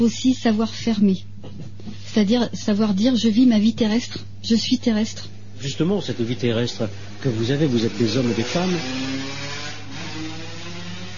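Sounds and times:
speech: 0.0s - 1.3s, 2.1s - 9.6s
motorcycle engine droning: 6.0s - 11.1s
constant road noise: 6.1s - 11.1s.

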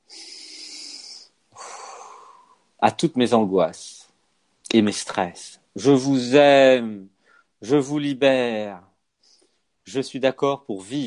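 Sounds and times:
slow deep breath inhale and exhale: 0.0s - 2.7s, 7.2s - 7.6s
speech: 2.8s - 4.0s, 4.7s - 8.9s, 9.9s - 11.0s.

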